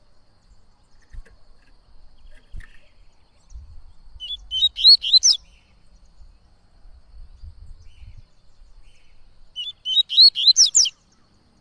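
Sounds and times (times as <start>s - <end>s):
yellow-bellied seedeater singing slurred whistled notes: 4.2s - 5.4s, 9.6s - 11.0s.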